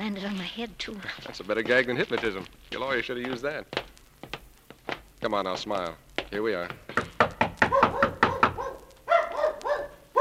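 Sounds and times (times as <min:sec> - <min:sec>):
speech: 0:00.1 - 0:03.9, 0:05.2 - 0:06.8
loud sharp knocking on a door: 0:06.2 - 0:08.7
dog barking: 0:07.6 - 0:10.1.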